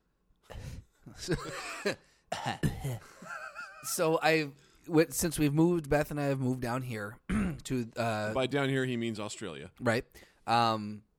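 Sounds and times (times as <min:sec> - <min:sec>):
person coughing after drinking bourbon: 0:01.2 - 0:03.2, 0:07.3 - 0:07.6
speech: 0:01.2 - 0:11.1.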